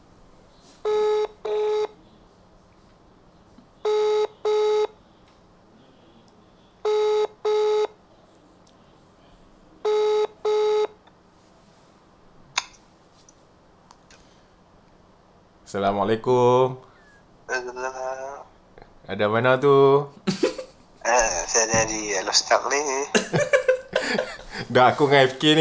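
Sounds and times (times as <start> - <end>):
telephone ringing tone: 0.8 - 2.0, 3.8 - 5.0, 6.8 - 8.0, 9.9 - 11.0, 21.1 - 22.4
speech: 15.7 - 16.9, 19.1 - 20.4, 21.6 - 23.6, 24.6 - 25.5
laughter: 20.2 - 22.0, 23.1 - 25.5.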